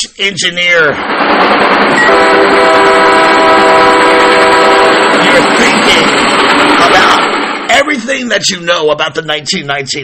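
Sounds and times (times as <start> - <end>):
speech: 0.0 - 3.8, 7.9 - 10.0
train rumbling along tracks: 0.9 - 8.3
sustained horn-like tone: 2.0 - 6.1.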